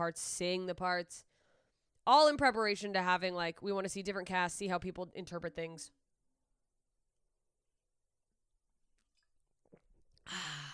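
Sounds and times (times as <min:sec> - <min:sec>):
speech: 0:00.0 - 0:01.3, 0:02.1 - 0:06.0, 0:10.3 - 0:10.7
person gulping a drink: 0:09.0 - 0:10.3.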